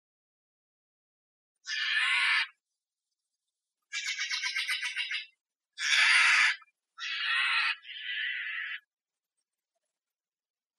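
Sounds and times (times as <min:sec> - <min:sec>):
Steller's jay giving harsh scraping calls: 0:01.6 - 0:02.6, 0:03.9 - 0:08.9.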